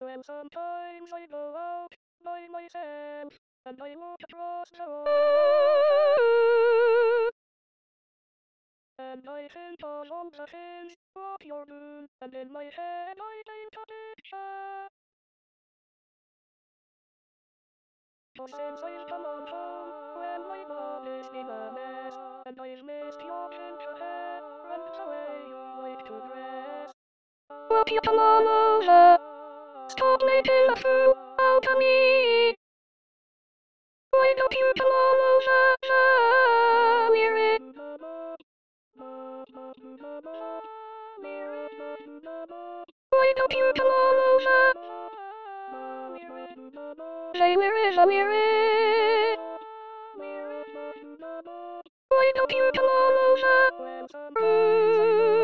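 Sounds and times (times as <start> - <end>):
lead soprano singing in SATB choir: 5.0 - 7.3, 18.4 - 27.0, 27.6 - 32.6, 34.2 - 38.4, 39.0 - 55.4.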